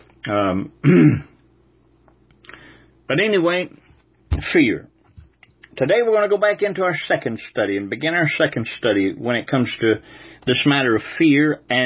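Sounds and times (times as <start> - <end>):
speech: 0.3 - 1.3, 3.1 - 3.8, 4.5 - 4.9, 5.8 - 11.8
person clearing throat or coughing: 0.8 - 1.4.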